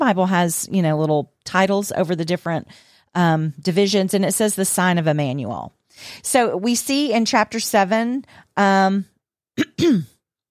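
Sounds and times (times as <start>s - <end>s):
speech: 0.0s - 10.1s
person clearing a tickle from their throat: 9.6s - 10.2s.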